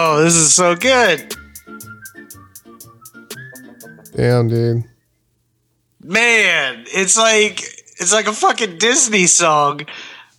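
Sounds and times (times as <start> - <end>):
hip-hop beat: 0.0 - 4.9
crisp hi-hats ticking: 0.0 - 5.2
speech: 0.1 - 1.4, 4.2 - 4.9, 6.0 - 10.2
bright whistled melody: 0.7 - 5.3.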